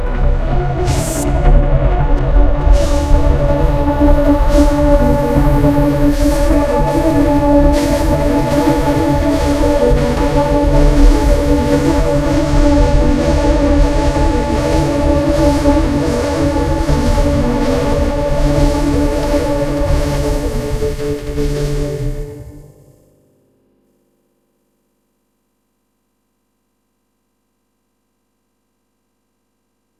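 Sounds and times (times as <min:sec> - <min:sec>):
happy synthwave music played by a science fiction instrument: 0:00.0 - 0:22.9.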